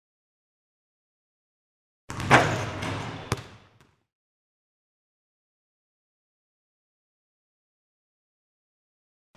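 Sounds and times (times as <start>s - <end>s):
basketball flung at a basket: 2.1s - 3.9s.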